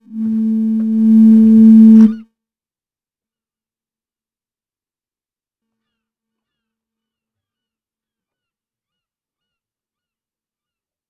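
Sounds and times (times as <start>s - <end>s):
distant foghorn: 0.1s - 2.2s.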